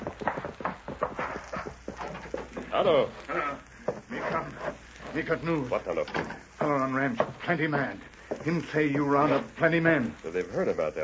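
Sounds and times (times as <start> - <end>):
hoofbeats of a horse ridden hard: 0.0 - 2.7
speech: 2.8 - 11.0.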